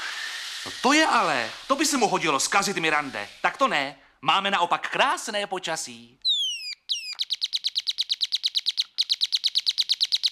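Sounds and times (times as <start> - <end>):
speech: 0.8 - 6.2
bird singing: 6.2 - 10.2.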